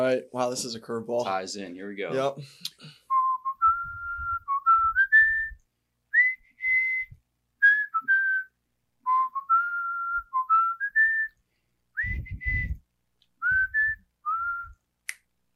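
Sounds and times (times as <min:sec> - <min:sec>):
speech: 0:00.0 - 0:03.0
person whistling a slow hymn melody: 0:03.1 - 0:05.6, 0:06.2 - 0:11.4, 0:12.0 - 0:12.8, 0:13.4 - 0:14.8
soft low thumps: 0:03.6 - 0:05.5, 0:12.0 - 0:14.7.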